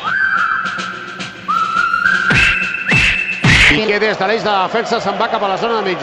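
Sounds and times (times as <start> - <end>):
football stadium crowd of supporters whistling at a match: 0.0 - 6.0
dense roar of football stadium crowd: 1.6 - 6.0
speech: 4.0 - 6.0.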